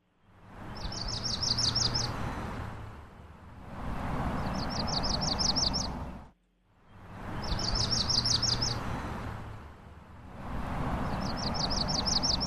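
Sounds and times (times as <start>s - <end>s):
yellow-rumped warbler singing a high trill: 0.2s - 2.2s, 4.4s - 6.1s, 6.9s - 8.8s, 11.0s - 12.4s
steady rushing noise: 0.3s - 12.4s.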